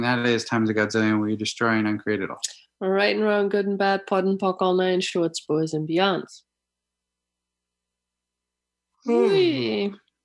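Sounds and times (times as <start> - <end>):
speech: 0.0 - 6.5, 9.0 - 10.0
person yawning: 9.1 - 9.9.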